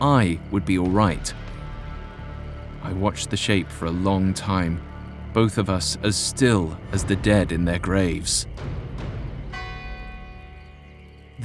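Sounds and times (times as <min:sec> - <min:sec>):
speech: 0:00.0 - 0:01.4, 0:02.8 - 0:08.8
low rumbling background: 0:00.0 - 0:11.4
church tower bell striking the hour: 0:07.1 - 0:11.4.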